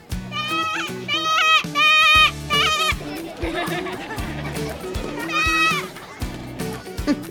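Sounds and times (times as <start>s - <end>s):
laughter: 0.0s - 7.2s
dancers performing as sheep bleating at a theater festival: 0.1s - 3.2s, 5.0s - 6.0s.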